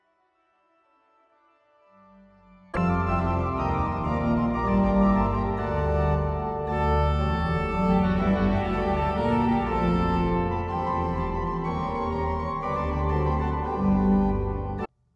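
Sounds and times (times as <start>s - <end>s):
tuba tune: 2.8s - 14.9s.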